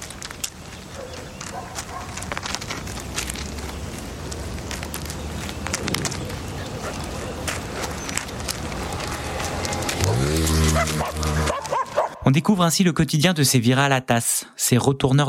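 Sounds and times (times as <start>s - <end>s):
city bustle: 0.0s - 12.2s
constant street traffic: 0.0s - 12.2s
street dog barking: 1.0s - 2.2s, 10.7s - 12.3s
speech: 12.4s - 15.2s.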